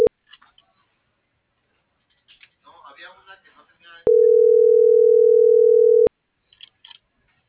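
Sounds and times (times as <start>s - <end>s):
telephone dial tone while a call is being placed: 4.1s - 6.1s.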